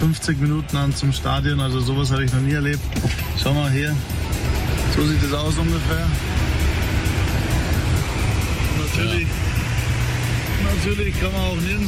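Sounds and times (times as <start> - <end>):
speech: 0.0 - 4.3, 5.0 - 7.1, 8.9 - 9.5, 10.6 - 11.8
car engine idling in slow traffic: 0.0 - 11.8
road hum: 0.0 - 11.8.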